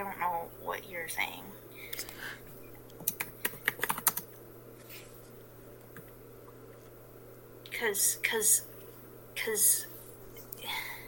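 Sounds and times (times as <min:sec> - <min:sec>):
speech: 0:00.0 - 0:02.5, 0:07.8 - 0:08.7, 0:09.4 - 0:09.9
low steady hum: 0:00.0 - 0:11.0
typing on a computer keyboard: 0:03.0 - 0:04.3.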